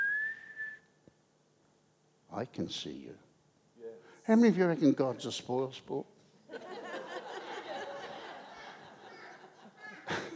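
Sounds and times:
person whistling a single sustained note: 0.0s - 0.9s
speech: 2.4s - 3.3s, 4.3s - 6.1s
laughter: 6.5s - 10.3s.

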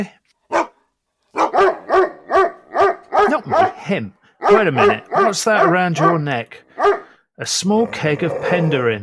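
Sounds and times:
speech: 0.0s - 0.2s, 3.3s - 9.0s
St. Bernard barking deep woofs: 0.5s - 7.2s.

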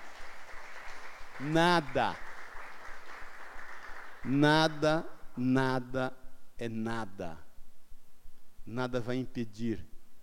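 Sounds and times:
large group applauding indoors: 0.0s - 4.8s
speech: 1.4s - 2.2s, 4.2s - 7.4s, 8.7s - 9.9s.

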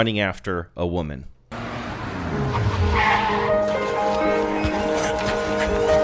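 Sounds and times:
speech: 0.0s - 1.4s
car engine revving racing up to an airport curb: 1.5s - 6.0s
car tires squealing while skidding to a halt: 1.5s - 6.0s.

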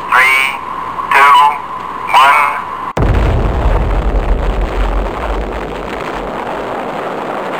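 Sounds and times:
person speaking: 0.0s - 2.7s
long loud steady roaring rumble of an atomic bomb detonation: 3.0s - 7.2s
atomic bomb detonation at a desert test site: 3.0s - 7.4s.

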